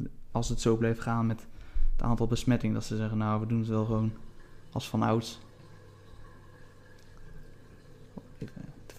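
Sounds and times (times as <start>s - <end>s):
speech: 0.4s - 5.5s, 8.4s - 8.6s
dishwasher running with a low mechanical hum: 2.7s - 8.9s.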